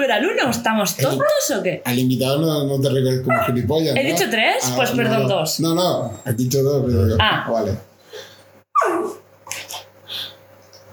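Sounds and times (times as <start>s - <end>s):
speech: 0.0s - 8.3s
dog yelping: 1.2s - 1.6s, 3.3s - 3.6s, 8.7s - 9.2s.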